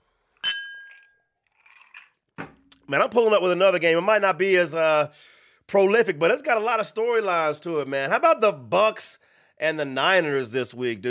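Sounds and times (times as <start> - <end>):
two drinking glasses clinking in a toast: 0.4 - 2.6
soft shuffling or sipping noise: 1.5 - 2.2
speech: 2.9 - 11.0.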